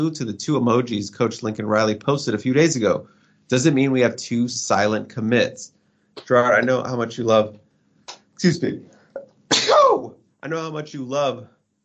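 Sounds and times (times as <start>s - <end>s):
speech: 0.0s - 7.6s, 8.4s - 8.9s, 10.4s - 11.6s
person sneezing: 9.2s - 10.1s.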